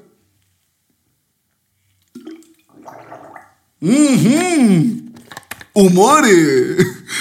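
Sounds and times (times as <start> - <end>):
person slurping a sip of water: 2.1 - 3.6
gurgling swallowing of water: 2.2 - 3.7
speech: 3.8 - 5.0, 5.8 - 7.0.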